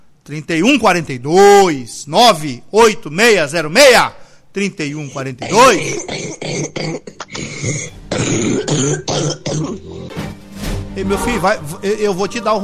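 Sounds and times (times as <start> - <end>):
speech: 0.3 - 10.2, 11.0 - 12.6
heavy phlegmy coughing: 5.4 - 10.2
throat-clearing: 5.5 - 10.1.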